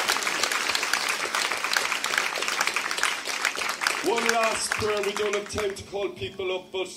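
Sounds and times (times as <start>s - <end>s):
audience applause: 0.0s - 5.8s
speech: 4.0s - 6.9s.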